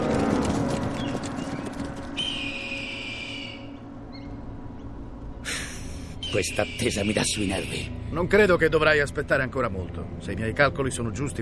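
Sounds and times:
cavalry horses galloping in a soldiers' charge: 0.0 - 3.2
speech: 6.3 - 11.4.

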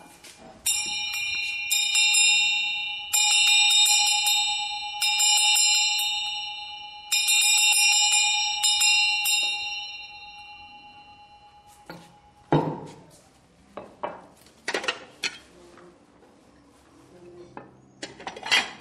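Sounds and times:
house handbell ringing in rapid metallic strikes: 0.6 - 12.5.

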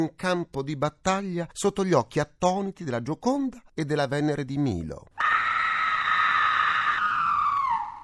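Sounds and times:
speech: 0.0 - 5.4
long high-pitched scream: 5.2 - 8.0.

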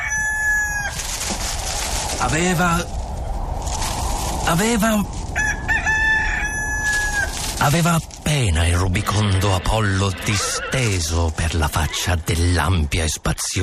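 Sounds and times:
rooster crowing: 0.0 - 1.1, 5.3 - 7.4
rushing noise: 0.8 - 13.6
speech: 2.2 - 3.0, 4.5 - 5.2, 7.6 - 13.6.

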